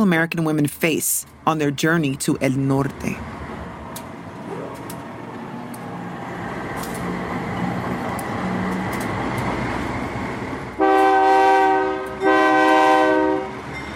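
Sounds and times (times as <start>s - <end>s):
speech: 0.0s - 3.4s
freight train rumbling: 0.0s - 13.9s
freight train horn blasts: 10.8s - 13.6s.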